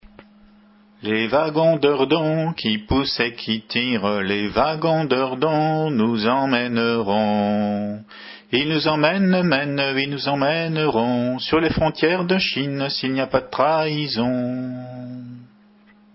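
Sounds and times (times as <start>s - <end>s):
call and response singing: 1.0s - 15.6s.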